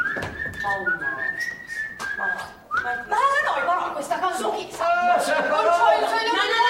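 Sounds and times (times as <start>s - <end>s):
person whistling imitating a blackbird: 0.0s - 3.1s
speech: 0.6s - 1.6s, 2.2s - 6.6s.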